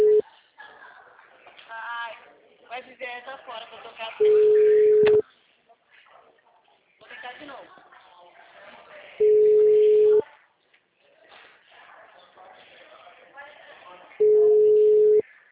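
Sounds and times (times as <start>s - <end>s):
telephone busy signal tones: 0.0s - 0.2s, 4.2s - 5.2s, 9.2s - 10.2s, 14.2s - 15.2s.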